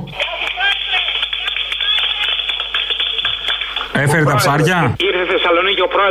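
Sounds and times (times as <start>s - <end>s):
women clapping outside at the president's arrival in Thessaloniki: 0.0s - 4.1s
speech: 4.0s - 6.0s.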